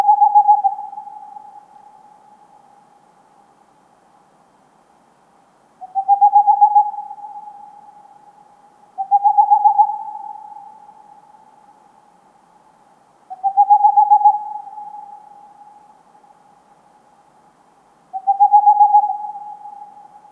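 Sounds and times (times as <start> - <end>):
Tengmalm's owl song of rapid pulsed low hoots: 0.0 - 2.7, 5.8 - 11.8, 13.3 - 16.0, 18.1 - 20.2.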